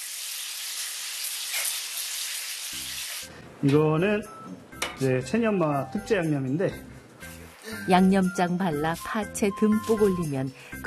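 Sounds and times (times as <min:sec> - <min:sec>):
fish frying in hot oil: 0:00.0 - 0:03.3
speech: 0:02.7 - 0:06.9, 0:07.8 - 0:10.8.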